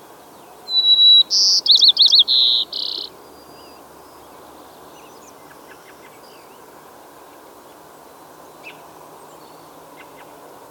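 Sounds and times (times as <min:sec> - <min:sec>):
White-crowned sparrow Zonotrichia leucophrys singing: 0:00.7 - 0:03.8.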